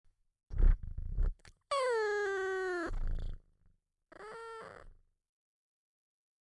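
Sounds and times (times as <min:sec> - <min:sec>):
sleepy cat meowing: 0:01.7 - 0:03.0, 0:04.1 - 0:04.9.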